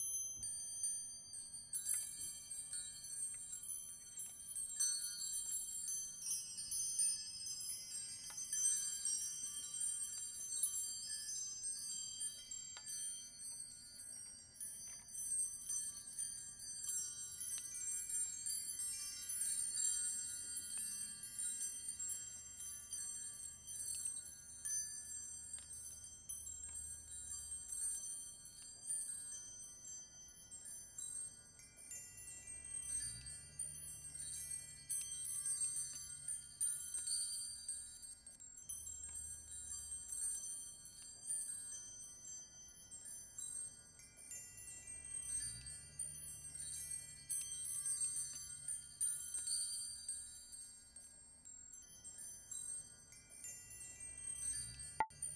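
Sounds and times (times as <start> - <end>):
chimes: 0.0 - 55.3.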